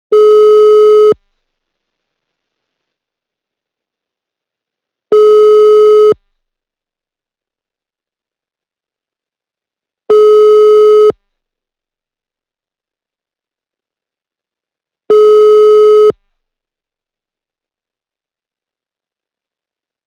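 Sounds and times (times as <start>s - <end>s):
phone ringing: 0.1s - 1.2s, 5.1s - 6.2s, 10.1s - 11.1s, 15.1s - 16.1s.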